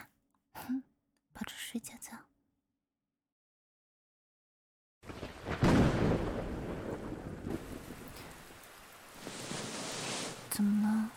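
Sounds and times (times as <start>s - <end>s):
speech: 1.7s - 2.3s
low rumble of thunder: 5.0s - 11.1s
steady hissing rain: 5.1s - 11.1s.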